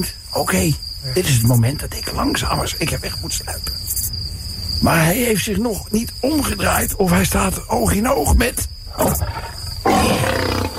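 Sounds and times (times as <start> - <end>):
speech: 0.0 - 3.8, 4.8 - 10.2
lion roaring: 8.9 - 10.7.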